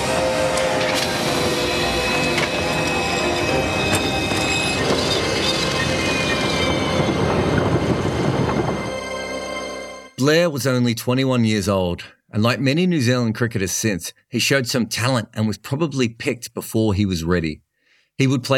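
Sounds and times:
high train wheel squeals: 0:00.0 - 0:09.8
train rolling along the rails: 0:00.0 - 0:10.2
speech: 0:10.3 - 0:17.6, 0:18.2 - 0:18.5.

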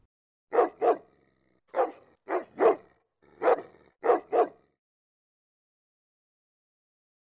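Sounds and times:
dog barking: 0:00.5 - 0:04.7.

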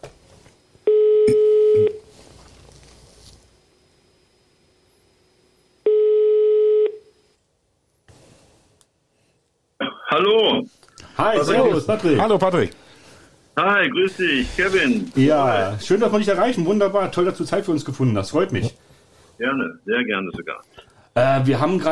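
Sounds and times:
telephone ringback tone on an outgoing call: 0:00.9 - 0:02.0, 0:05.8 - 0:07.0
speech: 0:11.2 - 0:12.8, 0:13.6 - 0:18.8, 0:19.4 - 0:21.8.

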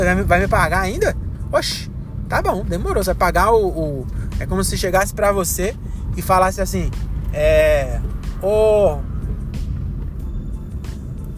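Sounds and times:
speech: 0:00.0 - 0:09.1
low engine rumble of road traffic: 0:00.0 - 0:11.3
vehicles whooshing past outside: 0:00.0 - 0:11.3.

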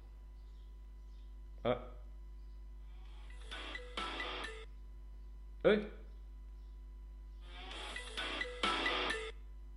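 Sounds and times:
hum: 0:00.0 - 0:09.7
speech: 0:01.6 - 0:02.0, 0:05.6 - 0:06.0
electronic ringtone melody from a mobile phone: 0:03.1 - 0:04.7, 0:07.4 - 0:09.4.

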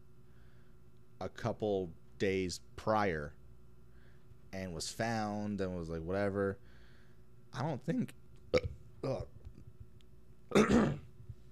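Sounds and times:
speech: 0:01.2 - 0:03.4, 0:04.5 - 0:06.7, 0:07.5 - 0:09.4, 0:10.5 - 0:11.0
short rough burp: 0:08.5 - 0:09.3, 0:10.5 - 0:11.1.

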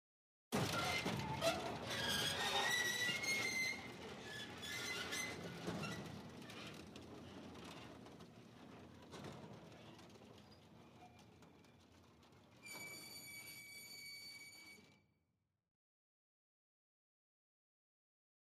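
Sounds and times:
garage door grinding open with metallic screech: 0:00.6 - 0:06.8, 0:12.6 - 0:15.0.

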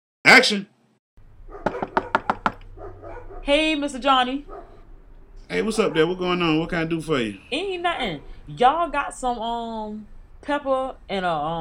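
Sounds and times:
speech: 0:00.4 - 0:00.7, 0:03.4 - 0:04.7, 0:05.5 - 0:11.5
sharp knocking on a door: 0:01.6 - 0:02.7.

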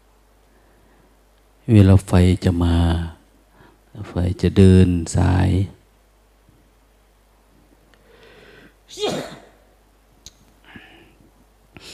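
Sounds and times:
speech: 0:01.7 - 0:03.2, 0:04.0 - 0:05.8, 0:08.9 - 0:09.1
person with COVID sneezing: 0:08.9 - 0:09.6.

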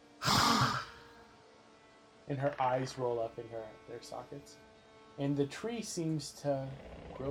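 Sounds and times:
woman gasping: 0:00.2 - 0:01.0
speech: 0:02.3 - 0:07.3.

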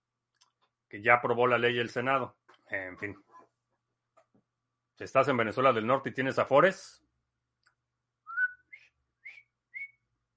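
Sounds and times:
speech: 0:00.9 - 0:03.3, 0:05.0 - 0:07.0
person whistling a short high-pitched tune: 0:08.3 - 0:10.0.

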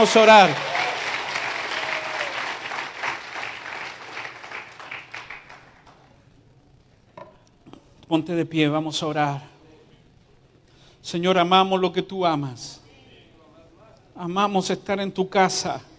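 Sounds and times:
speech: 0:00.0 - 0:00.7, 0:08.1 - 0:09.5, 0:11.0 - 0:12.8, 0:14.2 - 0:15.9
audience applauding: 0:00.0 - 0:06.1.

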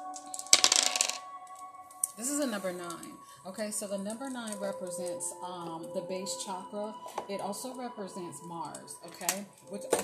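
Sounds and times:
dice clattering across a hard surface: 0:00.3 - 0:01.2
speech: 0:02.2 - 0:10.0.

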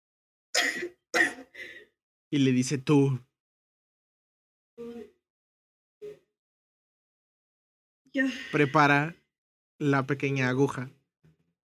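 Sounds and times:
person imitating rough throaty coughs of a character coughing up blood: 0:00.6 - 0:01.6
speech: 0:02.3 - 0:03.3, 0:08.2 - 0:09.2, 0:09.8 - 0:11.0.

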